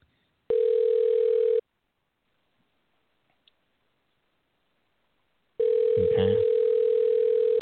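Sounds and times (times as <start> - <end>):
phone call ringing tone: 0.5 - 1.6, 5.6 - 7.6
voice murmuring: 6.0 - 6.4.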